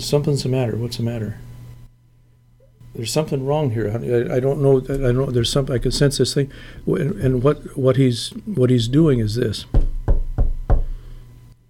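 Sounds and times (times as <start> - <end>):
speech: 0.0 - 1.5, 3.0 - 9.8
faint steady hum: 0.0 - 11.6
firm knocks on a door: 9.7 - 11.0.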